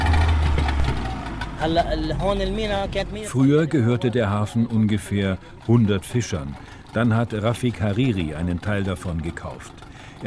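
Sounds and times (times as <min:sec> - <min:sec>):
small fishing boat engine idling at Dalje fishing harbour in Beirut Lebanon: 0:00.0 - 0:10.2
speech: 0:01.6 - 0:10.2.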